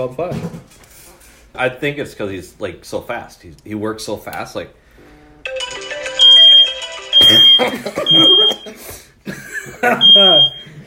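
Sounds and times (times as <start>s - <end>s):
speech: 0.0s - 0.9s, 1.5s - 4.8s, 7.3s - 10.8s
smoke detector fire alarm beeping: 6.2s - 8.7s, 10.0s - 10.7s
laughter: 7.3s - 10.5s.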